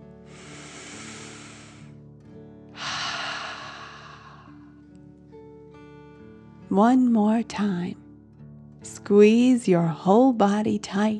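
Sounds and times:
slow deep breath in through nose and out through mouth: 0.2 - 2.0, 2.7 - 4.8
speech: 6.7 - 8.0, 9.1 - 11.1.

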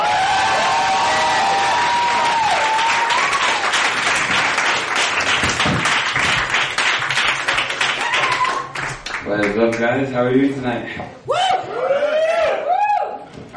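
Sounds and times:
audience cheering at a live poetry show: 0.0 - 5.0, 7.8 - 9.0, 11.3 - 13.3
audience applauding at a live poetry show: 0.0 - 9.8
speech: 9.6 - 11.4.

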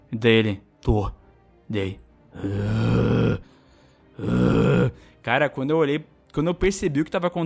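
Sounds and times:
speech: 0.1 - 3.5, 4.2 - 7.4
voice imitating a mother's loud rasping zombie-like snoring: 2.4 - 3.5, 4.2 - 5.0.

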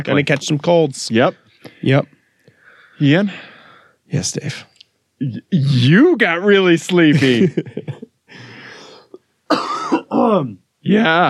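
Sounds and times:
speech: 0.0 - 2.2, 3.0 - 3.5, 4.1 - 8.5, 9.5 - 11.2
laughter: 7.1 - 8.1
person coughing: 9.5 - 10.5.

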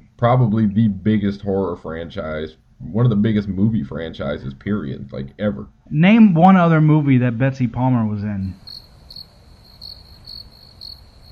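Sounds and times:
soft low hum: 0.0 - 10.2
speech: 0.2 - 8.6
crickets chirping: 8.4 - 11.3.

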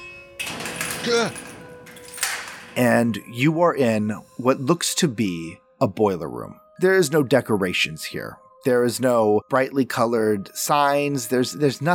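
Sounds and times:
old elevator's heavy metal door grinding and crashing shut: 0.0 - 3.4
speech: 1.0 - 1.4, 2.8 - 11.9.

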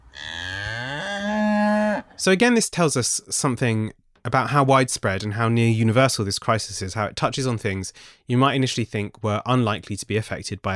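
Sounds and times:
long loud cow moo: 0.0 - 2.2
speech: 2.2 - 10.7.

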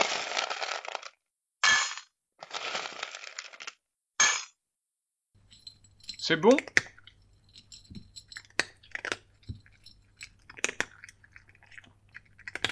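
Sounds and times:
dry cat kibble poured into a bowl: 0.0 - 3.8
speech: 6.3 - 6.8
cat chewing dry kibble in a kitchen: 6.6 - 12.7.

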